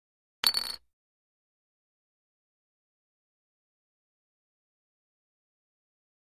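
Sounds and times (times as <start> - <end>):
casino poker chips dropping: 0.4 - 0.8.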